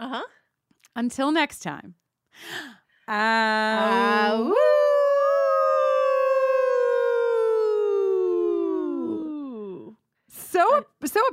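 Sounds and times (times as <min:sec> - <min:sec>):
speech: 0:00.1 - 0:00.4, 0:01.0 - 0:04.7, 0:10.6 - 0:11.3
wolf-like howl: 0:04.3 - 0:09.8.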